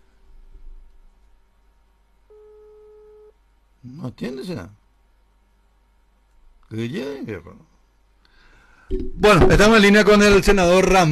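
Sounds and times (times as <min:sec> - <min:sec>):
low noise on a phone line: 0:00.0 - 0:11.0
telephone ringback tone over a quiet line: 0:02.3 - 0:03.3
speech: 0:03.8 - 0:04.8, 0:06.7 - 0:07.7, 0:08.9 - 0:11.0.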